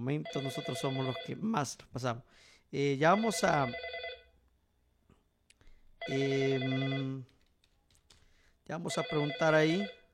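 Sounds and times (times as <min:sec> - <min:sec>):
speech: 0:00.0 - 0:04.0, 0:06.0 - 0:07.3, 0:08.7 - 0:10.0
telephone ringing with an incoming call: 0:00.2 - 0:01.5, 0:03.2 - 0:04.3, 0:06.0 - 0:07.3, 0:08.9 - 0:10.1.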